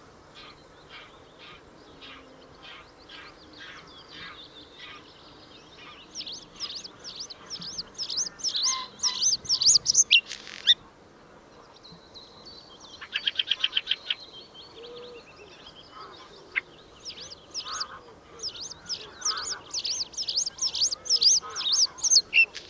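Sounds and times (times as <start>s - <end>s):
Bluethroat chirps: 4.2s - 10.8s, 13.0s - 22.6s.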